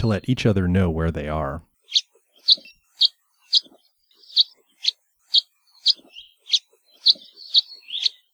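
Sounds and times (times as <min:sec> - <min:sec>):
speech: 0:00.0 - 0:02.7
house finch nasal cheep calls: 0:01.8 - 0:08.3.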